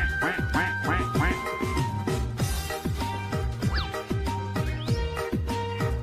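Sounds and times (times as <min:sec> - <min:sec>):
duck quacking: 0:00.0 - 0:01.6
rhythmic music with a steady beat and deep bass notes: 0:00.0 - 0:06.0.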